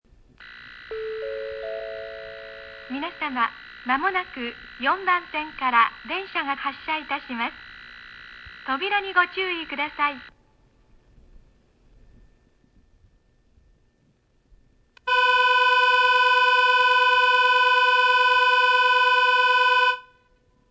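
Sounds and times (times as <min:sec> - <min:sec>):
train departure timing signal: 0:00.4 - 0:10.3, 0:15.0 - 0:20.2
Kishiwada station platform 4 departure bell: 0:00.9 - 0:03.3
platform 4 departure announcement: 0:00.9 - 0:07.6, 0:08.6 - 0:10.3.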